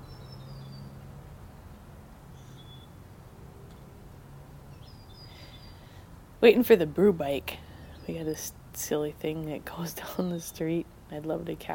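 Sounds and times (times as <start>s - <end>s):
bird chirping outdoors: 0.0s - 1.0s, 2.3s - 3.0s, 4.7s - 5.9s
low rumble of street noise: 0.0s - 11.7s
speech: 6.4s - 11.7s.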